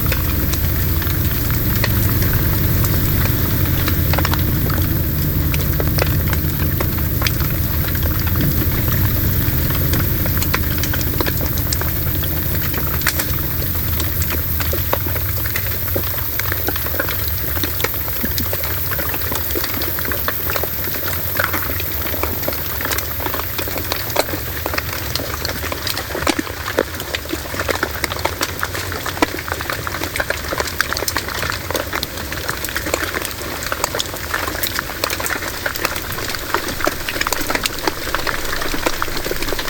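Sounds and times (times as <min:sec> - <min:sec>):
low rumble in deep-sea hydrophone recording: 0:00.0 - 0:25.0
deep-sea underwater crackling, fizzing and popping: 0:00.0 - 0:39.6.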